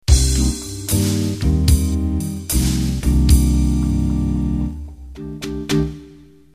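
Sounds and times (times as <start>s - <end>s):
jazz vocal ending: 0.0s - 4.7s.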